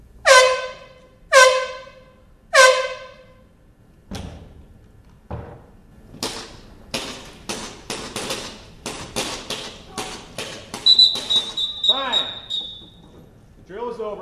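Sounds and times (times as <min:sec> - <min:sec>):
loud sharp air horn blasts simulating gunfire: 0:00.2 - 0:03.5, 0:10.9 - 0:12.9.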